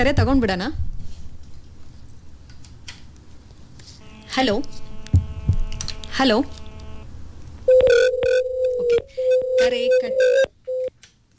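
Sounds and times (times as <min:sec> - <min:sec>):
speech: 0:00.0 - 0:00.9, 0:04.4 - 0:04.8, 0:06.2 - 0:06.6, 0:08.9 - 0:10.5
sharp clicks and crackling bursts on a telephone line: 0:04.0 - 0:07.1, 0:07.7 - 0:11.3
telephone line tone after a phone-in call drops: 0:04.0 - 0:07.1, 0:07.7 - 0:10.9
short beep: 0:07.7 - 0:10.9.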